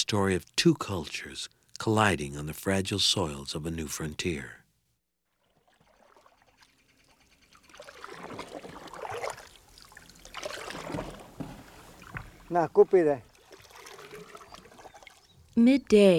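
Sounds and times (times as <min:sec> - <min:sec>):
speech: 0:00.0 - 0:04.6, 0:12.5 - 0:13.3, 0:15.6 - 0:16.1
lake water sloshing around a wooden dugout boat being pulled: 0:05.3 - 0:15.7.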